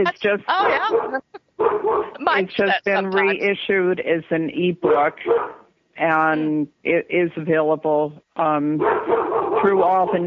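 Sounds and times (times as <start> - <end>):
laughter: 0.0 - 1.4, 2.2 - 3.4
speech: 0.0 - 10.2
dog barking: 0.6 - 2.2, 4.8 - 5.6, 8.8 - 10.2.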